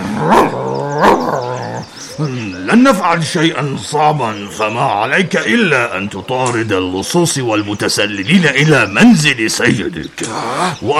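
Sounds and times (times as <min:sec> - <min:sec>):
dog growling: 0:00.0 - 0:02.2
speech: 0:02.2 - 0:10.9.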